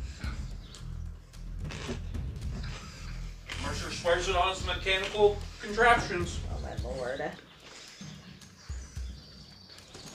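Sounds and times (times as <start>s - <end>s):
dull low thumps: 0.0s - 7.2s
birds chirping outdoors after rain: 0.0s - 10.1s
speech: 4.0s - 7.5s.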